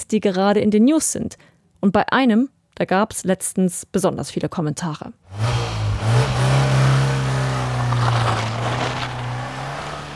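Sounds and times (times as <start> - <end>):
speech: 0.0 - 6.4
car engine revving loudly: 5.3 - 10.1.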